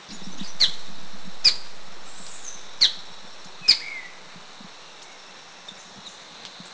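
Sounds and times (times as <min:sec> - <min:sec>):
Black-and-cinnamon Fantail in Kitanglad Philippines: 0:00.1 - 0:06.6.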